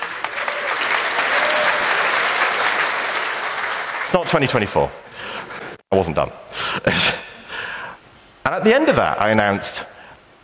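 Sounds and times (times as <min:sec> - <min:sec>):
crowd applauding: 0:00.0 - 0:04.7
speech: 0:04.1 - 0:05.2, 0:05.9 - 0:07.3, 0:08.5 - 0:09.9.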